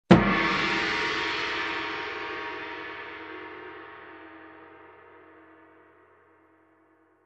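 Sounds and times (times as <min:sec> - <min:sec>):
gong hit: 0:00.1 - 0:03.6.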